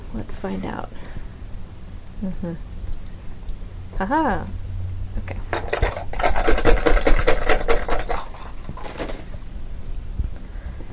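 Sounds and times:
speech: 0:00.1 - 0:01.2, 0:02.2 - 0:02.8, 0:04.0 - 0:04.6, 0:05.2 - 0:05.7
dice being rolled: 0:05.5 - 0:09.2.

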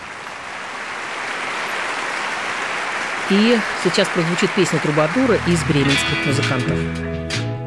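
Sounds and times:
applause from a large audience: 0:00.0 - 0:06.8
speech: 0:03.3 - 0:07.5.

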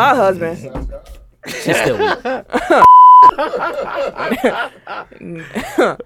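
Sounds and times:
speech: 0:00.0 - 0:06.0
people chuckling and laughing: 0:01.4 - 0:06.0
phone notification beep: 0:02.8 - 0:03.3.

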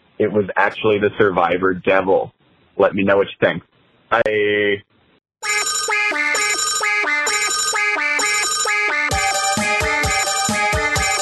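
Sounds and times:
speech: 0:00.2 - 0:05.6
loud electronic telephone ringtone: 0:05.4 - 0:11.1.

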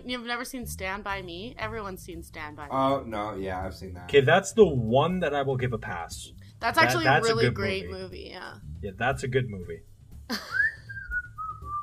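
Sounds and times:
speech: 0:00.0 - 0:10.6
person whistling a tune: 0:10.4 - 0:11.8.

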